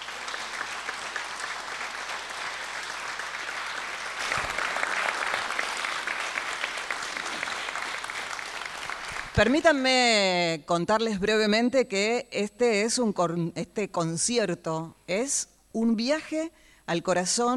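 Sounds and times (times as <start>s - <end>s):
sustained applause from a large audience: 0.0s - 9.4s
speech: 9.4s - 17.5s.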